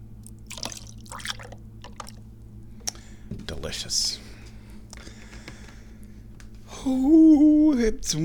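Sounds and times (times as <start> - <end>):
steady low hum: 0.0 - 8.2
bright dripping and trickling: 0.4 - 2.2
tea pouring from a large full jug: 0.5 - 2.2
speech: 3.7 - 4.2, 6.8 - 8.2.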